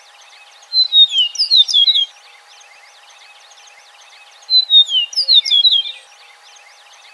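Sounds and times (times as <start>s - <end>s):
Eastern meadowlark singing: 0.7s - 2.1s, 4.5s - 6.2s.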